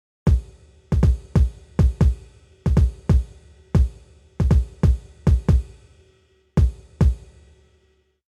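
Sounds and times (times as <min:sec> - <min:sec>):
kick drum: 0:00.3 - 0:05.7, 0:06.6 - 0:07.2.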